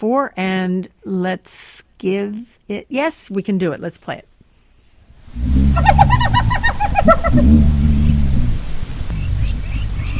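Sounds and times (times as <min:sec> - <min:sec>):
speech: 0:00.0 - 0:04.3, 0:05.3 - 0:07.9
hyena low rumbling grumble contact call: 0:05.3 - 0:09.3
hyena giggling: 0:05.5 - 0:08.4.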